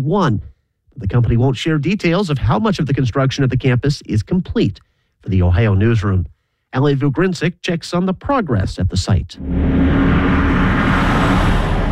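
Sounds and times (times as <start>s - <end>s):
speech: 0.0s - 10.1s
heavy trucks hauling materials rumbling along rural roads around a construction site: 9.4s - 11.8s.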